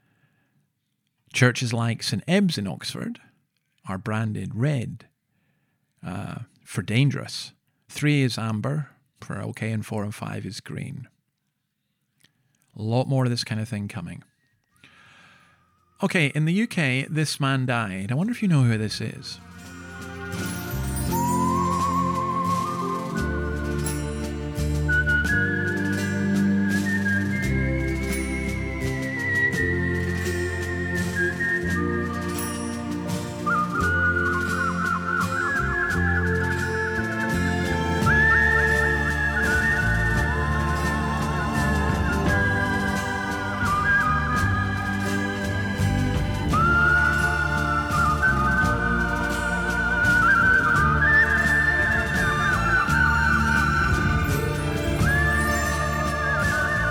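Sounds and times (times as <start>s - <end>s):
speech: 1.3s - 3.3s, 3.9s - 5.1s, 6.0s - 11.1s, 12.8s - 14.3s, 16.0s - 19.5s
British man whistling a slow lilting folk tune: 14.4s - 16.0s, 19.5s - 56.8s
instrumental backing with steady bass and chords: 19.4s - 56.8s.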